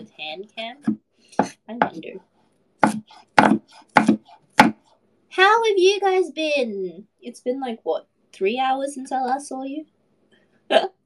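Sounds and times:
speech: 0.2s - 2.3s, 5.4s - 10.0s, 10.7s - 11.0s
garlic being chopped: 2.8s - 5.0s.

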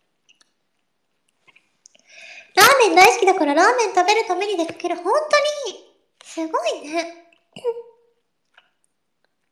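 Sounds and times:
chewing food close to the microphone: 0.0s - 2.1s, 7.2s - 9.5s
speech: 2.8s - 7.9s.

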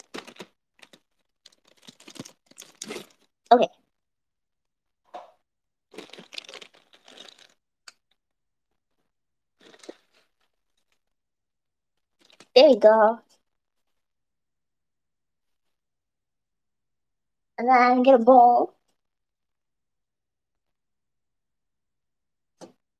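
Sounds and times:
plastic ramen package crinkling as it is cut with scissors and torn: 0.0s - 3.3s, 5.9s - 7.6s, 9.6s - 10.2s, 12.2s - 12.6s
speech: 3.5s - 3.8s, 12.7s - 13.3s, 17.6s - 18.8s.

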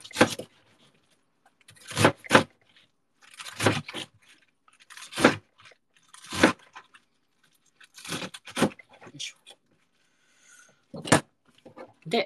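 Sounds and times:
knife chopping stacked napa cabbage leaves: 0.0s - 0.6s, 1.7s - 2.6s, 3.2s - 6.9s, 7.9s - 8.8s.

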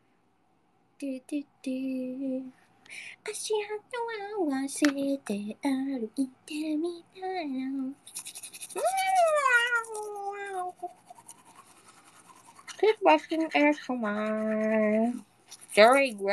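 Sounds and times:
speech: 1.0s - 10.1s, 12.8s - 16.3s
toothbrush scrubbing while brushing teeth: 8.0s - 16.3s.

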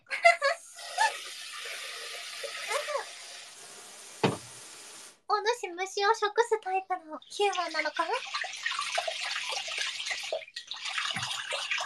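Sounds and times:
rice being washed by hand in water: 0.7s - 5.2s, 7.2s - 11.8s
speech: 5.6s - 8.5s.

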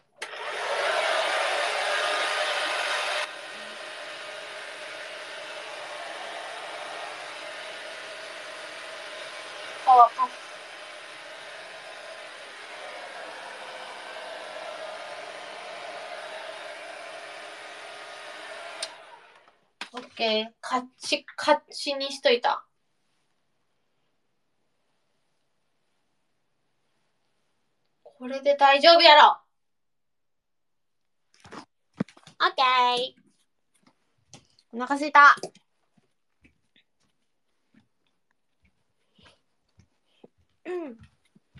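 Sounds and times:
hair dryer blowing on cool air setting: 0.2s - 20.0s
speech: 20.0s - 22.7s, 28.3s - 29.4s, 32.4s - 33.2s, 34.7s - 35.6s, 40.7s - 41.1s.

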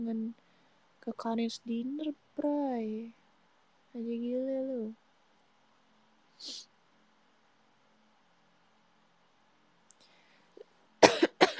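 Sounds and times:
speech: 1.0s - 3.2s, 3.9s - 5.0s, 6.4s - 6.7s
person coughing: 11.0s - 11.5s.

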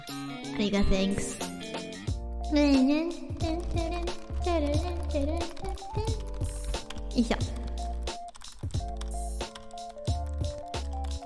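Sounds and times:
speech: 0.6s - 1.5s, 2.5s - 6.1s, 7.2s - 7.5s
typing on a computer keyboard: 3.4s - 11.2s.

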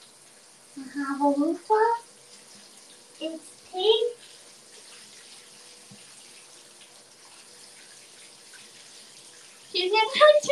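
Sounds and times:
running water hissing: 0.0s - 10.4s
speech: 0.8s - 2.1s, 3.2s - 4.3s, 9.8s - 10.4s.

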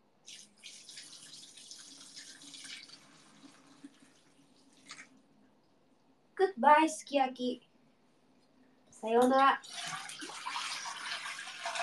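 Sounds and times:
liquid pouring into a container: 0.3s - 5.2s, 9.6s - 11.8s
speech: 6.5s - 7.7s, 9.0s - 9.8s.

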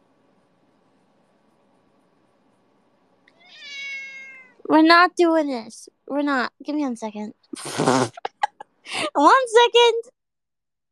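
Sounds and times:
cat meowing: 3.3s - 4.6s
speech: 4.7s - 8.3s, 8.9s - 10.2s.

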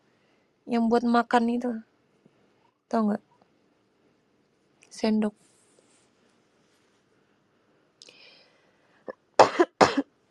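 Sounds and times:
speech: 0.7s - 1.9s, 2.9s - 3.3s, 5.0s - 5.4s
person coughing in the morning: 9.1s - 10.1s.

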